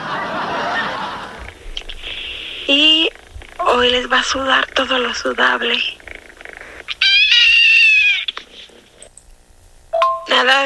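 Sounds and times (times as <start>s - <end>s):
laughter: 0.0s - 3.1s
speech: 3.7s - 6.0s, 10.4s - 10.6s
kitten meowing: 6.8s - 8.4s.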